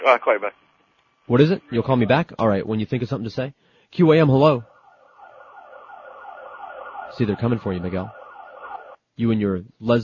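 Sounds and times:
speech: 0:00.0 - 0:00.7, 0:01.3 - 0:04.7, 0:07.2 - 0:08.2, 0:09.2 - 0:10.0
car alarm wailing in up-and-down sweeps: 0:04.7 - 0:09.0.

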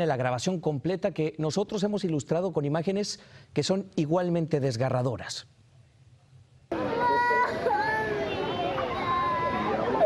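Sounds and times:
speech: 0:00.0 - 0:05.6
children wailing and sobbing after separation from their parents: 0:06.7 - 0:10.0.

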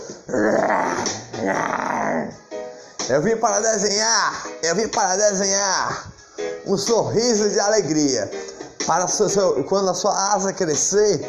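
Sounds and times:
speech: 0:00.1 - 0:02.4, 0:03.1 - 0:11.2
voice imitating a tiger growl: 0:00.3 - 0:02.4.

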